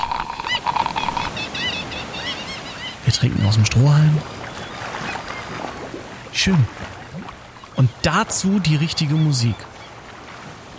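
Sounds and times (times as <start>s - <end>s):
seagull cries: 0.0s - 3.0s
speech: 3.2s - 4.3s, 6.4s - 6.9s, 7.8s - 9.7s.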